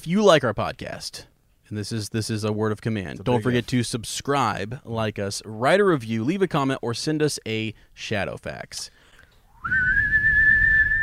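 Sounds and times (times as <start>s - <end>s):
speech: 0.0s - 9.0s, 9.6s - 10.3s
weak wavering whistle: 9.5s - 11.0s.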